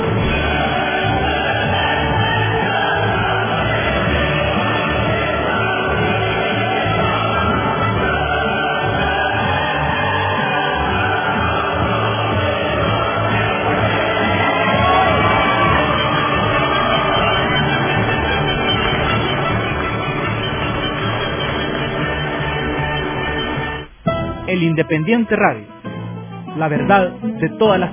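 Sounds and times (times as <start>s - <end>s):
scattered shouts from the crowd: 0.0s - 19.1s
large crowd clapping and cheering: 0.0s - 24.0s
speech: 24.9s - 25.7s, 26.6s - 27.9s.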